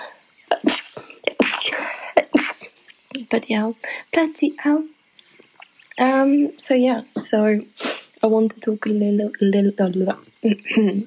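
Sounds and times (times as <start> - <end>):
person sneezing: 0.6 - 2.7, 7.8 - 8.1
speech: 3.3 - 5.0, 6.0 - 11.0.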